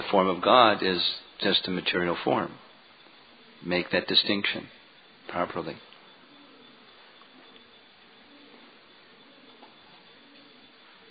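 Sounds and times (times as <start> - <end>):
chorus of pigeons cooing: 0.0 - 11.0
speech: 0.1 - 2.6, 3.6 - 5.9.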